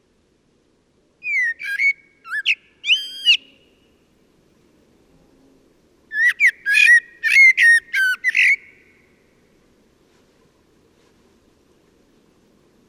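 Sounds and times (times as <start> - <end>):
Turdus merula common blackbird singing whistled phrases: 1.2 - 3.9, 6.1 - 8.9.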